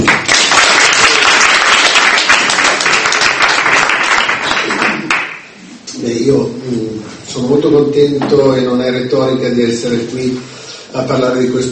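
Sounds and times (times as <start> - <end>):
audience applause welcoming a speaker at a book talk in Verona: 0.0 - 5.4
speech: 7.4 - 11.7.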